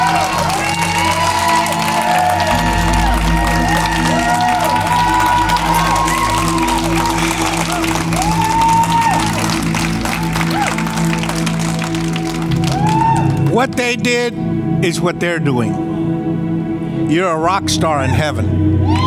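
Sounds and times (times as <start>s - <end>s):
whoops and shouts: 0.0s - 9.6s, 12.6s - 13.5s, 18.8s - 19.0s
large crowd clapping and cheering: 0.0s - 14.3s, 18.8s - 19.0s
speech: 13.9s - 16.0s, 17.1s - 19.0s.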